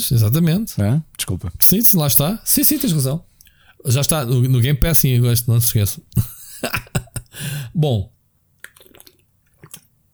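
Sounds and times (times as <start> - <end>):
speech: 0.0 - 6.8, 7.4 - 8.1
laughter: 6.2 - 7.5
person drinking water after choking: 8.6 - 10.1
swallowing water: 8.6 - 10.1.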